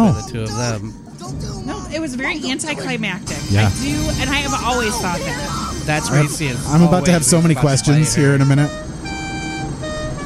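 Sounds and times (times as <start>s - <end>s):
speech: 0.1s - 8.9s
truck horn honking: 3.3s - 10.2s.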